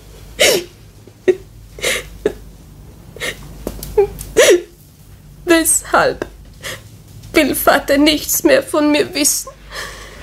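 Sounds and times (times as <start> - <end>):
girl sobbing with gasping breaths: 1.3 - 2.4, 3.2 - 4.7
speech: 6.0 - 6.4, 7.4 - 9.6.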